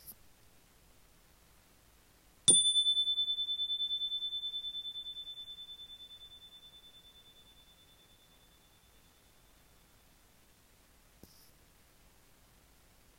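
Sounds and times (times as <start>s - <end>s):
bell chime: 2.5s - 9.8s.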